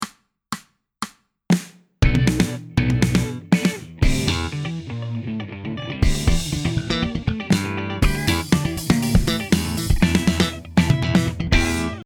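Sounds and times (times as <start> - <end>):
rock music in E minor at 120 BPM: 2.0 - 12.0.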